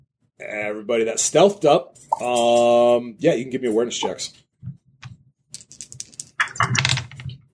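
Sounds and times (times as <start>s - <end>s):
speech: 0.4s - 4.4s
dice dropped beneath a desk clattering onto a hard surface: 5.6s - 7.3s.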